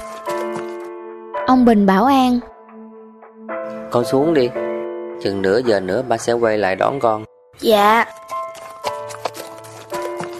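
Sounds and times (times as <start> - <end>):
speech: 1.5 - 2.5, 3.9 - 4.6, 5.2 - 8.2
horse hooves clip-clopping pulling a cart through snow: 8.1 - 10.3.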